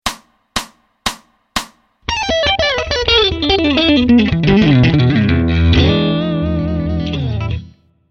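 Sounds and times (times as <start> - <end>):
fast blazing blues pentatonic riff: 2.0 - 7.8.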